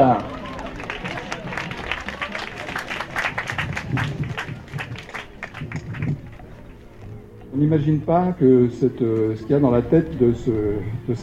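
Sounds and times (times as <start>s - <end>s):
audience applauding to welcome a guest speaker: 0.0s - 6.4s
faint murmur of voices: 0.0s - 11.2s
speech: 7.6s - 11.2s.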